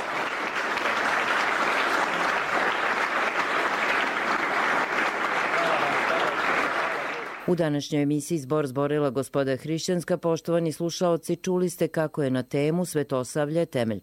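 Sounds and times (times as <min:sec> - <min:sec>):
audience applause: 0:00.0 - 0:07.5
speech: 0:07.5 - 0:14.0.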